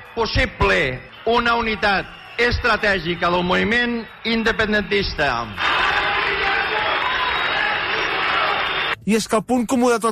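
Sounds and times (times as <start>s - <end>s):
large outdoor crowd whistling and jeering in disapproval at rally: 0.0s - 9.0s
speech: 0.2s - 5.7s, 9.1s - 10.0s.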